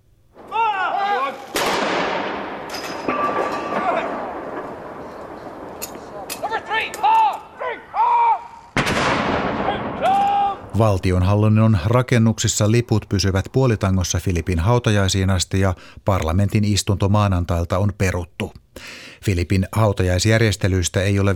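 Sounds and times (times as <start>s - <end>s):
artillery blasts of a gun salute fired at midday in Britain: 0.4s - 7.0s, 8.8s - 10.8s
crowd noise: 2.3s - 8.6s
speech: 10.8s - 21.3s.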